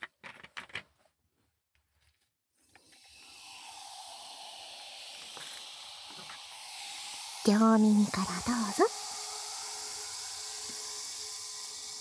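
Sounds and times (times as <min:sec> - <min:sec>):
fizzing crackle in a thin glass: 0:02.8 - 0:12.0
speech: 0:07.4 - 0:09.0
person talking softly: 0:07.5 - 0:09.0.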